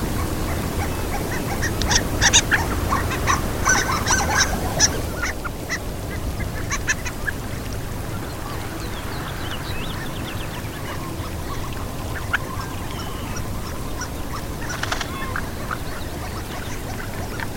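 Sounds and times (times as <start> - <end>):
steady rushing like surf or a stream: 0.0 - 17.5
Harlequin ducks giving thin squeaky calls: 0.2 - 5.8, 10.8 - 17.5.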